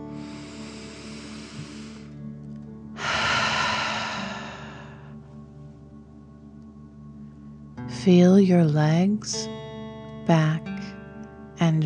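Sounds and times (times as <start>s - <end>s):
person inhaling slowly through nose: 0.0s - 2.2s, 3.0s - 5.2s
forceful exhale through mouth: 0.1s - 2.2s, 3.0s - 5.1s
speech: 8.0s - 9.6s, 10.3s - 10.7s.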